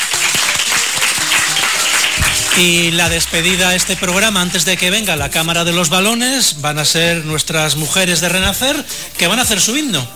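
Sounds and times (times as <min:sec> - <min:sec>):
audience applauding at the close of an event at a school: 0:00.0 - 0:05.5
speech: 0:02.6 - 0:10.1.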